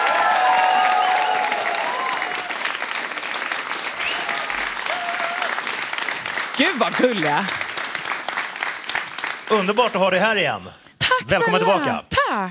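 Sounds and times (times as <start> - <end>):
studio audience cheers and whistles: 0.0 - 2.6, 4.0 - 5.6
studio audience applause: 0.0 - 10.4
speech: 6.6 - 7.6, 9.5 - 12.5.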